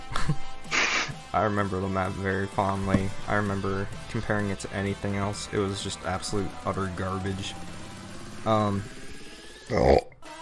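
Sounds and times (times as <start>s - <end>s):
speech: 0.3s - 0.5s, 1.3s - 7.7s, 8.4s - 9.0s, 9.7s - 10.0s
low guttural burp and rougher belch: 9.7s - 10.2s.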